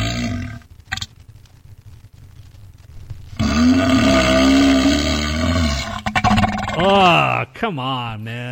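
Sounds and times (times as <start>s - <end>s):
loud drawn-out burp sound effect: 0.0s - 1.1s, 3.4s - 7.1s
speech: 7.6s - 8.5s.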